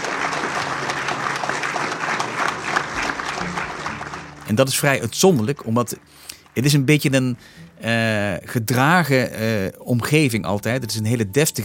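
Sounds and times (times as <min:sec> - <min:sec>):
large crowd applauding in a big formal hall: 0:00.0 - 0:07.4
speech: 0:04.5 - 0:11.6.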